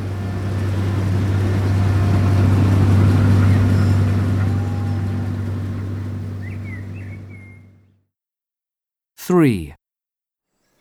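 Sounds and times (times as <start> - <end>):
large combine harvester engine droning: 0.0 - 7.9
speech: 9.3 - 9.8.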